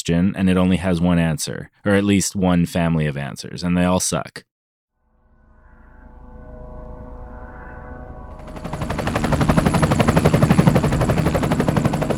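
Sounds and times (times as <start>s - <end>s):
speech: 0.0s - 4.5s
helicopter engine drone: 6.1s - 12.1s
rapid chopping of helicopter rotor blades: 8.3s - 12.1s.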